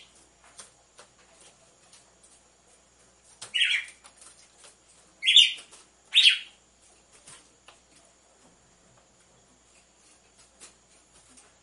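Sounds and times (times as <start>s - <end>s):
Red-cowled cardinal uttering scratchy chirps: 3.5s - 4.0s, 5.2s - 6.6s.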